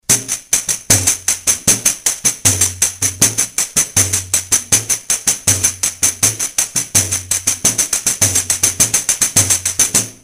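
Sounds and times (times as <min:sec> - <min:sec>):
pandeiro: 0:00.0 - 0:10.2.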